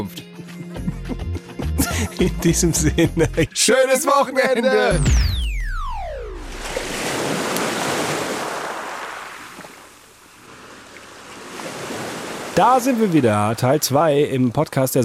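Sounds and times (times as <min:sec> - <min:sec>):
laughter: 0:00.6 - 0:05.0
speech: 0:02.2 - 0:05.4, 0:12.6 - 0:15.0
falling electronic sweep: 0:04.9 - 0:07.0
sea surf at Marseille: 0:06.2 - 0:15.0.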